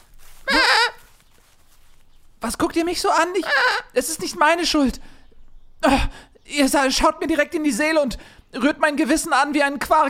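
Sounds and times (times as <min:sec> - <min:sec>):
goat bleating: 0:00.4 - 0:01.1
speech: 0:02.4 - 0:05.1, 0:05.8 - 0:10.0.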